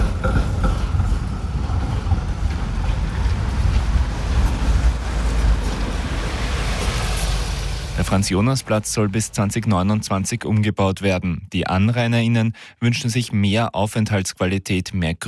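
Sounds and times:
busy street ambience: 0.0s - 9.6s
city bus rumbling past: 0.0s - 10.0s
speech: 8.1s - 15.2s.

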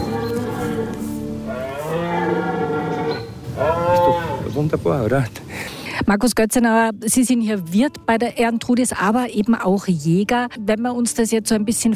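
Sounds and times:
red deer stag roaring during the rut in a game enclosure: 0.0s - 4.5s
steady outdoor noise: 0.0s - 11.9s
speech: 4.6s - 5.4s, 6.0s - 11.9s.

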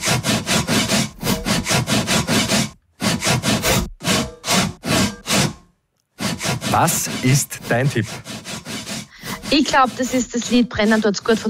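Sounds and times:
hand saw rasping through wood in rhythmic strokes: 0.0s - 11.4s
speech: 6.8s - 8.4s, 9.5s - 11.4s.

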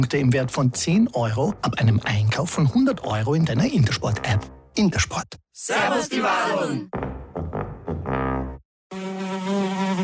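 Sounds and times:
speech: 0.0s - 7.1s
fly buzzing: 8.9s - 10.0s.

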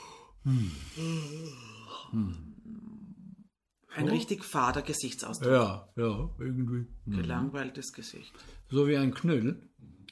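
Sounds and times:
person yawning with drawn-out voiced groans: 0.0s - 3.1s
speech: 0.4s - 2.8s, 4.0s - 9.9s.

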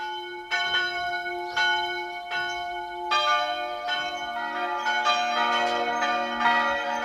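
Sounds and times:
parish church bells pealing: 0.0s - 7.0s.

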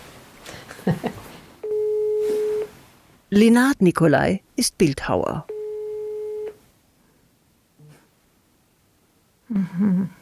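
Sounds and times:
telephone call ringback tone on the caller's end: 1.6s - 2.7s, 5.5s - 6.6s
speech: 3.3s - 5.5s, 9.5s - 10.2s.

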